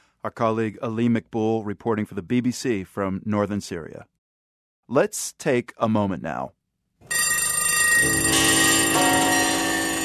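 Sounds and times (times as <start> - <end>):
speech: 0.2 - 4.1, 4.9 - 7.2, 8.0 - 8.6
many clocks chiming and ringing: 7.1 - 10.0.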